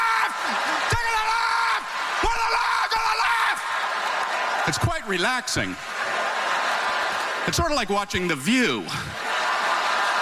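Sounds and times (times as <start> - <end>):
single voice mimicking women screaming at the top of their lungs: 0.0 - 3.6
laughter: 0.0 - 7.8, 8.6 - 10.2
speech: 4.7 - 6.0, 7.4 - 9.3.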